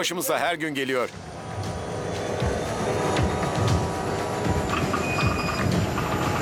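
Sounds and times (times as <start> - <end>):
speech: 0.0 - 1.4
railway wagons rolling on tracks in Alaska: 1.2 - 6.3
metallic squeals of railway wagons: 3.3 - 6.3.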